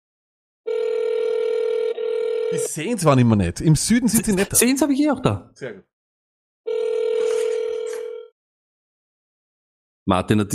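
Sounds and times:
telephone dial tone while calling: 0:00.7 - 0:02.7, 0:06.7 - 0:08.3
speech: 0:02.5 - 0:05.9, 0:10.1 - 0:10.5.

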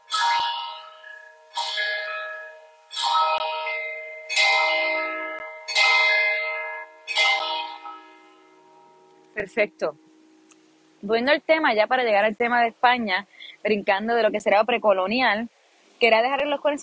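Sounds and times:
large bell tolling at five in the afternoon: 0:00.0 - 0:10.4
speech: 0:09.4 - 0:10.1, 0:11.0 - 0:16.8.

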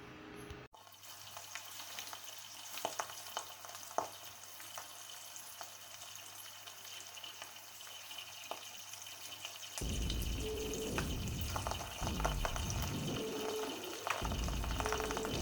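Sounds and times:
egg frying on a hot plate: 0:00.8 - 0:15.3
low electrical hum: 0:09.8 - 0:15.3.

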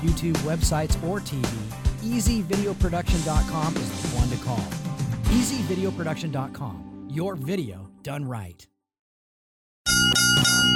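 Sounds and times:
speech: 0:00.0 - 0:08.7
bell ringing: 0:09.9 - 0:10.7.

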